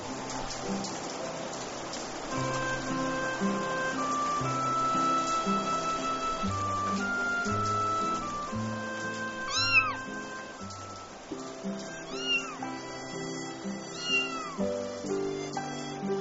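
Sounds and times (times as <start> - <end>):
soft instrumental music: 0.0 - 16.2
kitten meowing: 5.3 - 11.1, 11.8 - 16.2.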